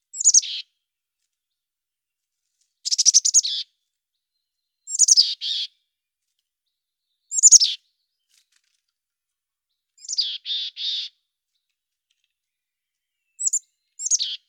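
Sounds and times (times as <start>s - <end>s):
mountain chickadee birdsong: 0.1s - 0.8s, 2.8s - 6.0s, 6.6s - 8.6s, 9.7s - 14.4s.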